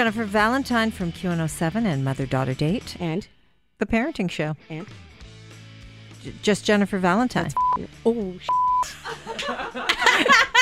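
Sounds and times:
speech: 0.0 - 5.1, 6.2 - 10.5
censor bleep over swearing: 7.6 - 7.9, 8.5 - 8.9
chuckling: 8.8 - 10.5.

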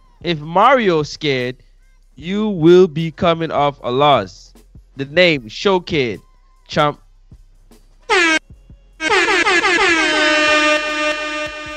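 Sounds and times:
speech: 0.2 - 7.0
loud brassy air horn blasts: 8.1 - 8.4, 9.0 - 11.7.

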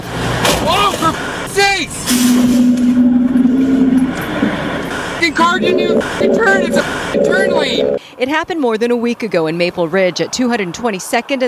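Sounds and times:
truck engine hum: 0.0 - 8.0
road noise: 0.0 - 11.4
speech: 1.8 - 2.7, 5.4 - 11.4
startled voices shouting: 5.3 - 8.0.

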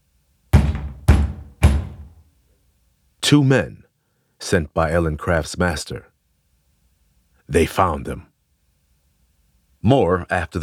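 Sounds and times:
heavy knocks on a wooden door: 0.6 - 2.2
speech: 3.3 - 3.8, 4.4 - 6.1, 7.5 - 8.3, 9.8 - 10.6.

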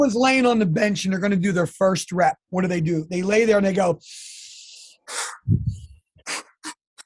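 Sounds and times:
speech: 0.0 - 4.4
person taking sharp deep breaths before lifting: 4.0 - 6.8.

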